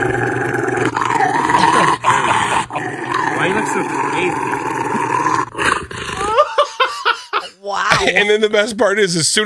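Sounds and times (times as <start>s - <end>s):
Rottweiler growling during bath: 0.0s - 6.7s
laughter: 1.6s - 3.0s, 6.2s - 8.6s
speech: 8.1s - 9.4s.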